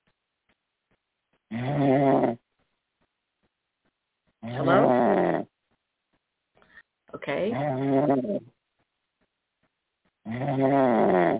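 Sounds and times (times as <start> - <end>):
caller from Ohio snoring over a telephone line: 1.5 - 2.4, 4.4 - 5.5, 7.5 - 8.5, 10.2 - 11.3
speech: 1.5 - 2.4.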